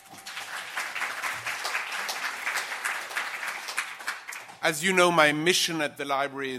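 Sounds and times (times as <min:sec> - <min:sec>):
crowd applauding: 0:00.0 - 0:04.7
speech: 0:04.6 - 0:06.5.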